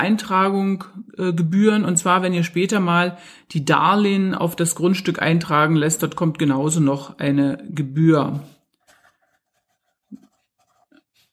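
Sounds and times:
speech: 0.0s - 8.5s
handwriting as notes are jotted down: 8.8s - 11.3s.

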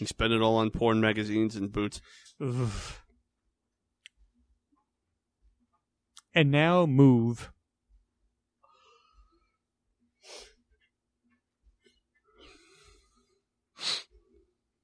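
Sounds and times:
speech: 0.0s - 3.0s, 6.3s - 7.6s
person yawning with groaning vocal sigh: 2.4s - 3.0s.

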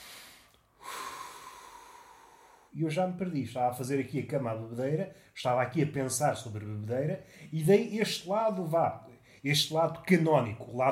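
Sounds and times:
deep breath: 0.0s - 2.8s, 7.2s - 7.6s, 9.1s - 9.5s
speech: 2.8s - 10.9s.

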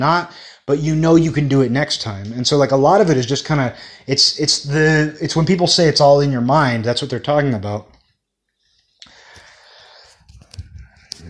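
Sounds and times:
speech: 0.0s - 7.9s
person inhaling from a Red Bull flavored vape: 9.0s - 11.0s.

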